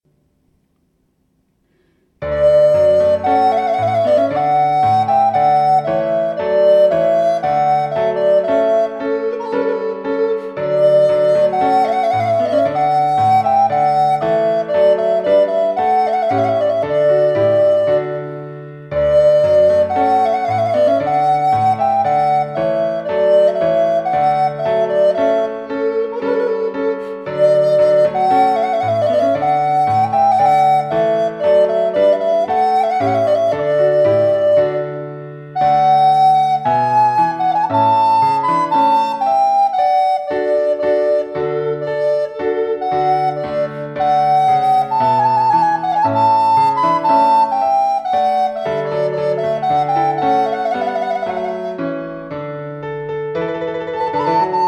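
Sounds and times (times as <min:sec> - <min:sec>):
march for flute and piano: 0:01.7 - 0:54.6.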